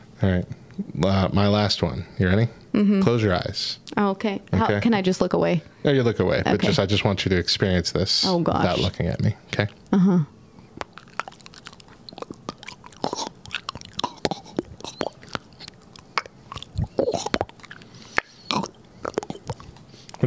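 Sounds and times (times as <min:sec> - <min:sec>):
speech: 0:00.2 - 0:10.4
wet squelchy mouth clicks imitating stirring a pot of macaroni and cheese: 0:10.7 - 0:20.2.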